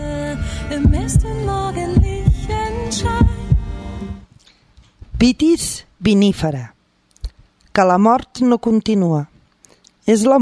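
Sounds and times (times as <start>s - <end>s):
sustained humming musical drone: 0.0s - 4.3s
speech: 0.7s - 2.0s, 5.2s - 6.8s, 7.8s - 9.3s, 10.1s - 10.3s
deep steady heartbeat thumping: 0.8s - 3.8s.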